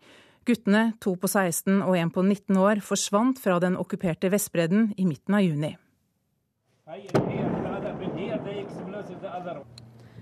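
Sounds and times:
speech: 0.5 - 5.8, 6.9 - 7.4
explosion at a house: 7.1 - 9.6.

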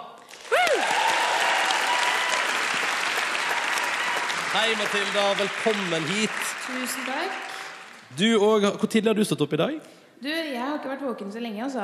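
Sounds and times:
crowd applause: 0.2 - 8.6
crowd whoop or cheer: 0.4 - 7.9
speech: 4.6 - 7.5, 8.1 - 11.8.

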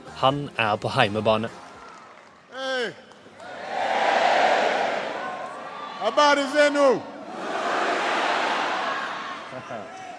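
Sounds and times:
speech: 0.2 - 1.6, 6.0 - 7.1
packed crowd roaring at Kenya's largest stadium in northeastern Nairobi: 3.4 - 10.1.

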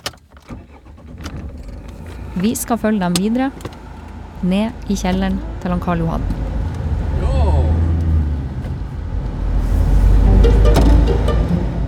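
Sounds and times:
low rumble of a moving car's interior: 0.0 - 11.8
speech: 2.4 - 3.8, 4.4 - 6.4.

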